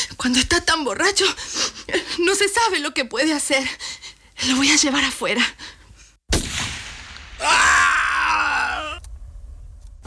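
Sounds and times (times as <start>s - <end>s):
speech: 0.3s - 5.6s
gun accidentally firing through a door: 6.3s - 7.9s
strained wordless vocal cries: 7.4s - 9.0s.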